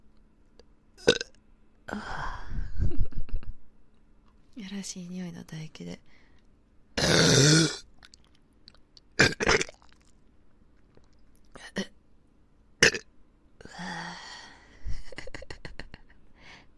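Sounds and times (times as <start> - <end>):
loud burps ending in a rattling stuttering belch: 1.0 - 1.4, 7.0 - 7.8, 9.2 - 10.0, 12.8 - 13.1
speech: 4.6 - 6.2.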